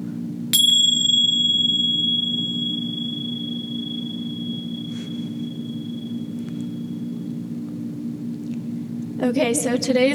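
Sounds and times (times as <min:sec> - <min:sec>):
low steady hum: 0:00.0 - 0:10.1
bright meditation bell struck: 0:00.6 - 0:07.7
speech: 0:09.2 - 0:10.1.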